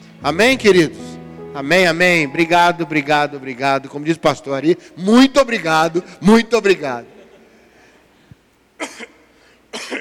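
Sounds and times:
speech: 0.2s - 1.0s, 1.6s - 7.2s
harsh broadband coughs: 8.8s - 9.9s.

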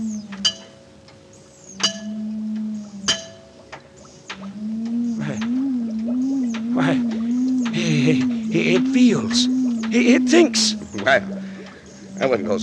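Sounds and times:
steady low electronic hum: 0.0s - 12.6s
taps on glass jar: 0.3s - 0.8s, 1.8s - 2.2s, 3.0s - 4.5s
laughter: 7.7s - 9.4s
speech: 8.1s - 11.3s, 12.2s - 12.6s.

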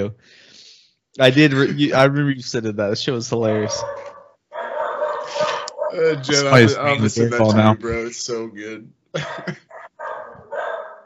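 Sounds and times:
speech: 0.0s - 0.6s, 1.2s - 4.1s, 5.3s - 9.7s
laughter: 1.2s - 4.0s, 5.2s - 9.7s
dogs barking: 3.4s - 6.6s, 9.7s - 11.0s.

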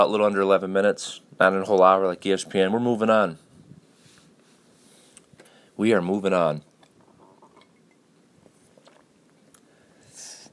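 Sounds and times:
speech: 0.0s - 3.4s, 5.8s - 6.7s
person sipping coffee and swallowing: 6.7s - 9.7s
airy slurp of coffee: 8.6s - 9.1s.

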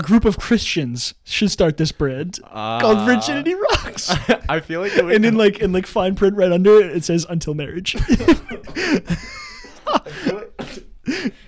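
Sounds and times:
speech: 0.0s - 9.3s
person coughing harshly: 2.6s - 4.1s
laughter: 2.6s - 5.3s, 8.0s - 10.6s.

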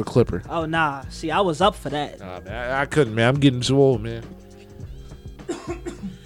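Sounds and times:
speech: 0.0s - 4.4s
person coughing: 5.4s - 6.2s.

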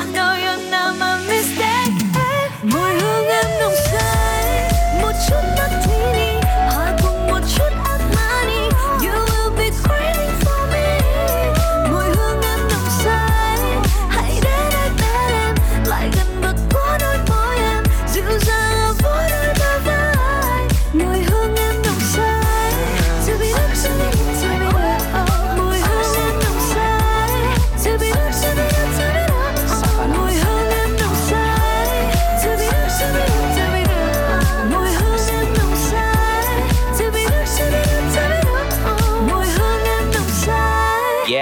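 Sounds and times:
pop track with female singer's melodic vocals: 0.0s - 41.4s
rapped verses over dense instrumentation: 0.0s - 41.4s.

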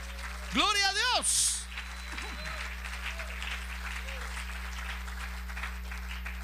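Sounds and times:
audience applauding: 0.0s - 6.4s
low electrical hum: 0.0s - 6.4s
speech: 0.5s - 1.5s.

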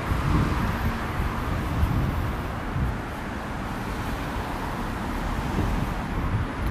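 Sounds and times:
wind on microphone: 0.0s - 3.3s, 5.2s - 6.6s
street traffic with cars passing: 0.0s - 6.6s.

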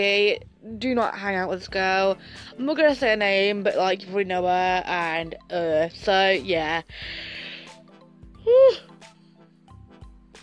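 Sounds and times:
speech: 0.0s - 7.4s, 8.4s - 8.9s
person yawning: 8.5s - 8.8s.

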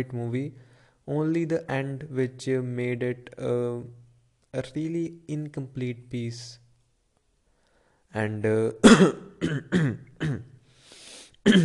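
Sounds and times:
speech: 0.0s - 6.6s, 8.1s - 10.5s, 11.4s - 11.6s
person coughing and clearing their throat: 8.8s - 10.6s, 11.4s - 11.6s.

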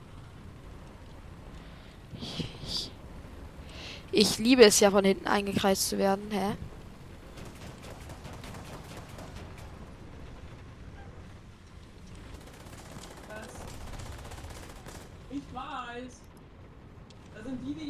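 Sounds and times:
speech: 4.1s - 6.7s
heavier gunfire bursts in a tank combat video game: 7.1s - 10.3s, 12.2s - 15.4s
rapid machine-gun-like gunfire in a tank combat video game: 7.3s - 10.1s, 12.2s - 15.3s.

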